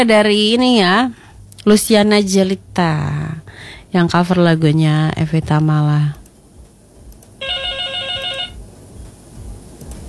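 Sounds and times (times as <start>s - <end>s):
speech: 0.0s - 6.2s
hiss: 0.0s - 10.0s
electronic telephone ringing for an incoming call to a radio show: 7.4s - 8.6s.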